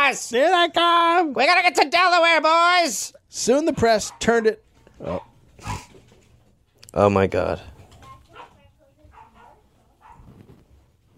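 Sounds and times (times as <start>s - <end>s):
speech: 0.1s - 5.8s, 6.9s - 7.8s
dog barking: 4.0s - 5.9s, 8.3s - 10.3s.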